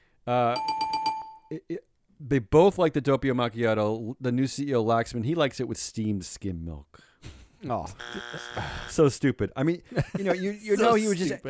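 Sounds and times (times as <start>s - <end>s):
speech: 0.3s - 0.8s, 1.5s - 11.4s
bell sound effect: 0.6s - 1.5s
laughter: 7.4s - 9.0s, 9.8s - 11.4s.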